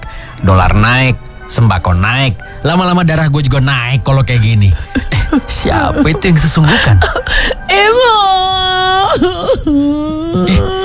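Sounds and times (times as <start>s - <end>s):
speech: 0.4s - 8.5s
laughter: 2.7s - 10.8s
child crying: 4.7s - 10.8s.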